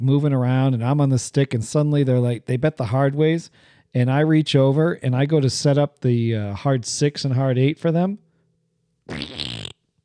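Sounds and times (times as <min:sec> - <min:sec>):
speech: 0:00.0 - 0:08.2, 0:09.1 - 0:09.6
loud buzzy fart: 0:09.1 - 0:09.8.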